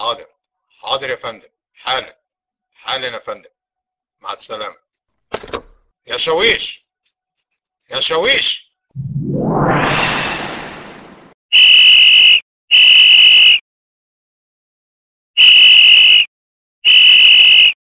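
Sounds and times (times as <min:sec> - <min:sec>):
speech: 0:00.1 - 0:02.2, 0:02.8 - 0:03.6, 0:04.2 - 0:06.8, 0:07.9 - 0:09.7
rising whoosh: 0:09.0 - 0:11.4
loud shrill whistle blasts: 0:11.5 - 0:13.6, 0:15.4 - 0:17.8.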